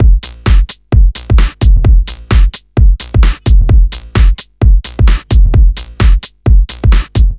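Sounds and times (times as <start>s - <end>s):
130 BPM fidget breaks loop: 0.0s - 7.3s.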